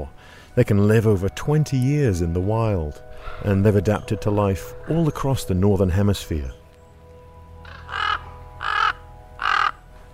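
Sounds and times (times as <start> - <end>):
speech: 0.0 - 6.6
common raven croaking calls: 3.1 - 4.0, 7.6 - 9.9.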